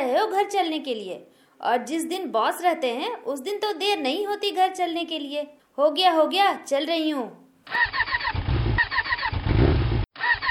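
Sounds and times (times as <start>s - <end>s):
speech: 0.1s - 8.4s
motorcycle engine cranking and sputtering while being started: 7.7s - 10.4s.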